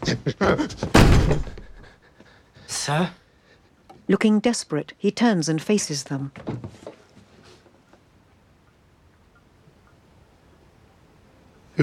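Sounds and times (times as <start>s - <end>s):
speech: 0.1s - 0.9s, 2.9s - 3.2s, 4.1s - 6.8s
front door pushed shut with a loud slam: 0.8s - 1.9s.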